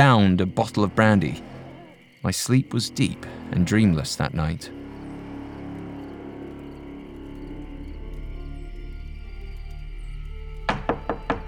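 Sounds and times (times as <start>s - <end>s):
speech: 0.0s - 1.6s, 2.2s - 4.8s
low steady rumble: 0.0s - 10.8s
fist pounding on a wooden front door: 10.7s - 11.4s.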